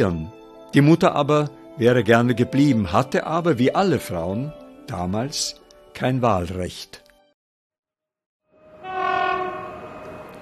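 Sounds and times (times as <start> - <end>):
speech: 0.0 - 7.0
train horn blast: 8.5 - 10.4
low rumbling rail noise: 8.6 - 10.4.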